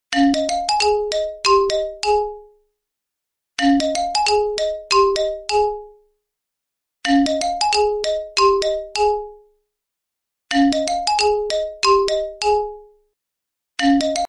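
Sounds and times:
phone ringtone: 0:00.1 - 0:02.5, 0:03.6 - 0:06.0, 0:07.1 - 0:09.4, 0:10.5 - 0:13.0, 0:13.8 - 0:14.2.

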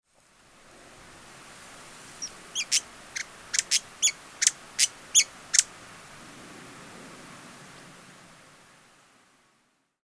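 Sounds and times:
steady background hiss: 0:00.6 - 0:09.2
Hyacinth visorbearer calling with sharp high chips: 0:02.2 - 0:05.7.

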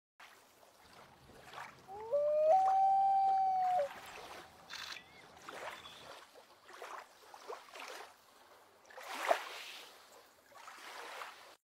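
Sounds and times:
faint water noise: 0:00.2 - 0:11.6
loon wail: 0:01.9 - 0:03.9.

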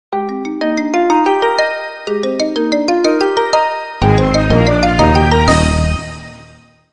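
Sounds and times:
Pantech phone ringtone: 0:00.2 - 0:05.5.

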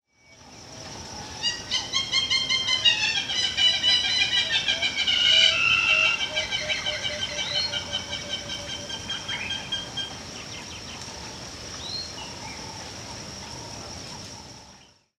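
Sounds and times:
steady background hiss: 0:00.1 - 0:15.1
hamerkop piping calls: 0:01.4 - 0:10.2.

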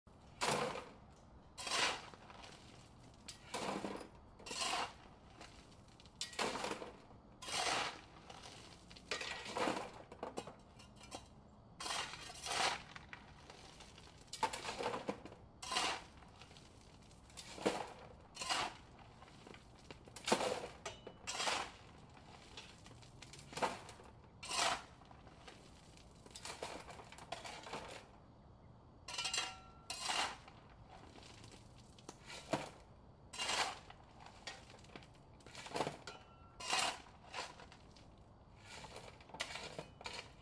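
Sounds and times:
wheelbarrow: 0:00.1 - 0:28.2, 0:29.1 - 0:40.4.

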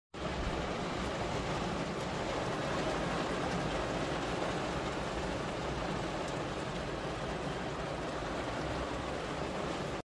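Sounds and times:
rain heard inside a car: 0:00.2 - 0:10.0.

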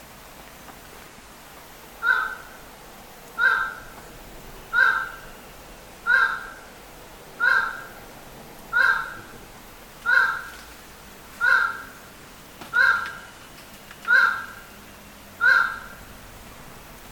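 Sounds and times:
highland tinamou calling a nasal harmonic note: 0:02.0 - 0:02.6, 0:03.4 - 0:03.9, 0:04.7 - 0:05.4, 0:06.0 - 0:06.7, 0:07.4 - 0:08.0, 0:08.7 - 0:09.4, 0:10.0 - 0:10.5, 0:11.4 - 0:12.0, 0:12.7 - 0:13.4, 0:14.1 - 0:14.6, 0:15.4 - 0:16.0.

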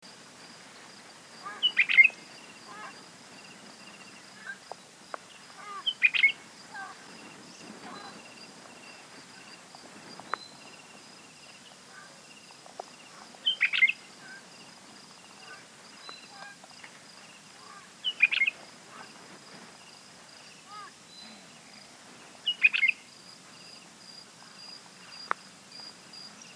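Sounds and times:
African red-eyed bulbul: 0:01.4 - 0:03.0, 0:03.8 - 0:09.6, 0:13.4 - 0:14.5, 0:15.2 - 0:19.1, 0:20.6 - 0:23.0.

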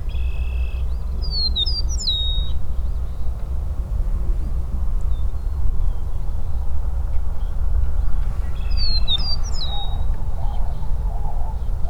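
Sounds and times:
Eastern meadowlark singing sweet descending slurred whistles: 0:00.2 - 0:02.5, 0:08.6 - 0:10.8
constant low rumble: 0:03.9 - 0:11.8.

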